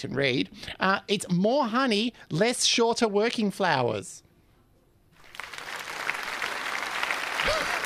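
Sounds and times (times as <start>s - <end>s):
speech: 0.0s - 4.3s
polite applause from a modest crowd: 5.2s - 7.8s.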